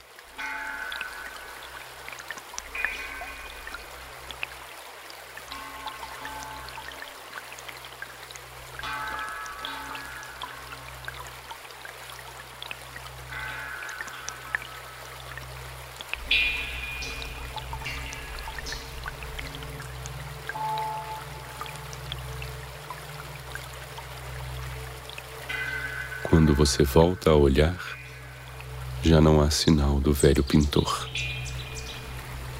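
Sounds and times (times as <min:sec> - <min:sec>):
water drops pinging in a hollow underground suikinkutsu jar: 0:00.1 - 0:32.5
speech: 0:26.4 - 0:28.0, 0:29.1 - 0:31.3.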